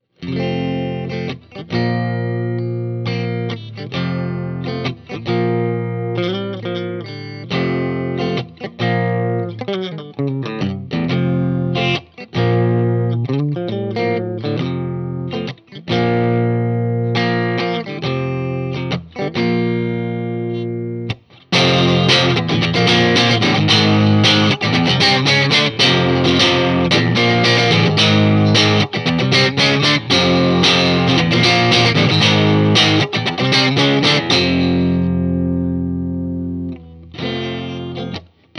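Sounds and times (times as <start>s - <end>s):
Tele electric guitar on middle pickup: 0.0s - 38.5s.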